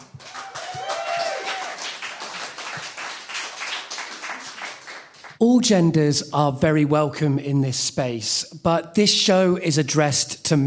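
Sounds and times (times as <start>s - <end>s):
audience clapping: 0.0s - 5.4s
speech: 5.4s - 10.6s.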